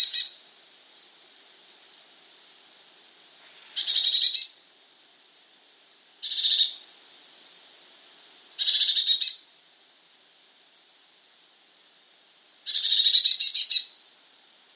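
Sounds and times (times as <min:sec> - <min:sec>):
Eurasian blue tit Cyanistes caeruleus churring: 0:03.6 - 0:04.6, 0:06.0 - 0:07.6, 0:08.6 - 0:09.5, 0:10.6 - 0:11.1, 0:12.5 - 0:14.0.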